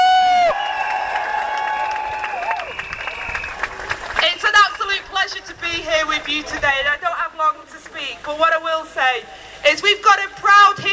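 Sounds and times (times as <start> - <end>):
large crowd cheering and applauding at rally: 0.0 - 4.5
speech: 6.3 - 10.9.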